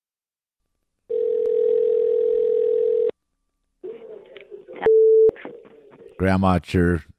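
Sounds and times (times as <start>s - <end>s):
telephone line ringing with a long electronic tone: 1.1s - 3.1s
speech: 6.2s - 7.1s.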